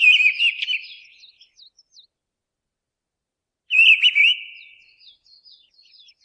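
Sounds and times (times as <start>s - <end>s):
Mistle thrush Turdus viscivorus singing a loud fluty wavering phrase: 0.0s - 2.1s, 3.7s - 6.2s.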